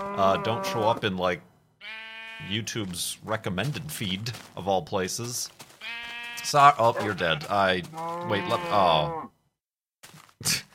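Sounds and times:
Minecraft Beta 1.7.3 sheep bleating when punched: 0.0s - 1.1s, 1.8s - 2.8s, 5.6s - 9.4s
speech: 0.2s - 9.3s, 10.4s - 10.6s.

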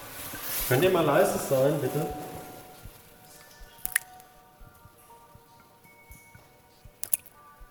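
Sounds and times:
speech: 0.7s - 2.3s
water drops plopping into a puddle in a cave: 3.8s - 4.2s.

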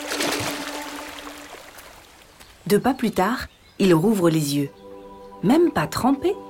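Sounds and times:
falling water from a waterfall rushing: 0.0s - 2.2s
speech: 2.7s - 4.8s, 5.4s - 6.4s.

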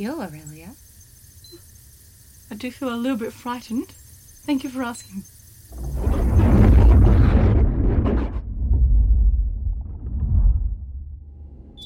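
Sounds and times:
speech: 0.0s - 0.8s, 2.5s - 6.0s
explosion in a service tube in a kitchen: 5.7s - 11.2s.

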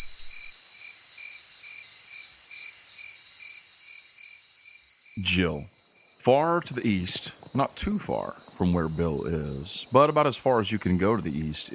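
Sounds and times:
small hand bell ringing: 0.0s - 2.5s
speech: 5.2s - 11.7s.

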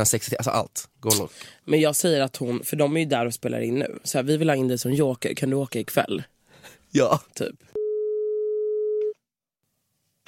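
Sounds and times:
speech: 0.0s - 7.8s
steady electronic telephone tone: 7.8s - 9.2s.

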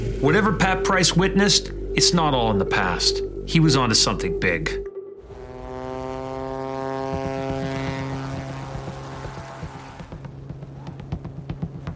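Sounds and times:
speech: 0.2s - 4.8s
small propeller plane engine droning while taking off from a glacier: 0.2s - 11.9s
rapid rhythmic ticking rattle: 9.2s - 11.9s.

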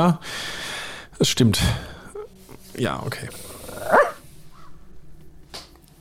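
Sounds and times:
speech: 0.0s - 0.6s, 1.2s - 1.9s, 2.8s - 3.4s
dog barking: 3.6s - 4.2s.

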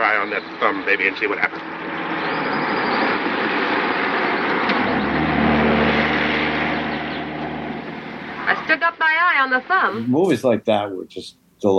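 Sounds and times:
motor vehicle engine and tire noise on a road: 0.0s - 8.8s
speech: 0.2s - 1.8s, 8.7s - 11.7s
car passing on road: 1.0s - 8.9s.

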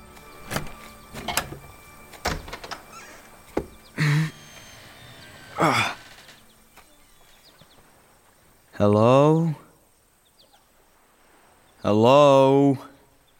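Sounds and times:
latches and handles of heavy wooden doors clunking: 0.2s - 4.0s
large heavy wooden doors creaking open: 0.2s - 7.6s
speech: 8.8s - 9.6s, 11.8s - 12.9s.

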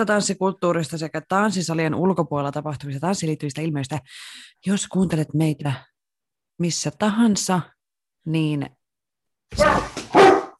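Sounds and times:
speech: 0.0s - 5.9s, 6.6s - 8.8s, 9.5s - 10.0s
dog barking: 9.6s - 10.5s.

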